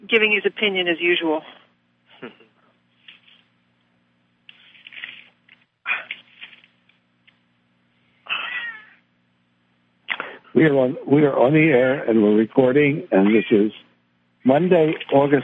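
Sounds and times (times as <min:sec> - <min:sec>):
faint steady hum: 0:00.0 - 0:15.4
speech: 0:00.1 - 0:01.6, 0:02.2 - 0:02.4, 0:10.6 - 0:13.8, 0:14.4 - 0:15.4
cat meowing: 0:08.3 - 0:09.0, 0:13.2 - 0:13.5.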